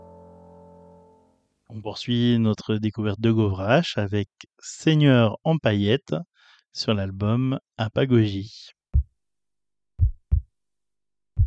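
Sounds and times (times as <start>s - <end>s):
speech: 1.7s - 8.8s
slow heartbeat with deep lub-dub thumps: 8.9s - 9.1s, 10.0s - 10.5s.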